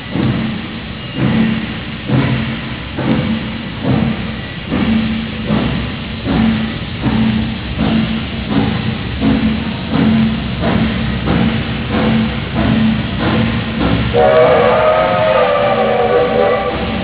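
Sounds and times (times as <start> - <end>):
old train recorded on a Motorola MPX200: 0.0 - 17.0.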